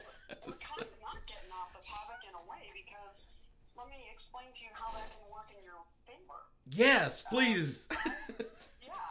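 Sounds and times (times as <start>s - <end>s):
parrot whistling warbling calls: 1.8s - 2.2s
speech: 2.4s - 8.5s.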